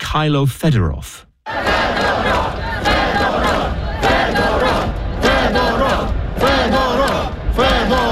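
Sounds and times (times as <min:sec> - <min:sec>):
speech: 0:00.1 - 0:03.4
large crowd of young protesters chanting a name in Kyiv Ukraine: 0:01.4 - 0:08.1.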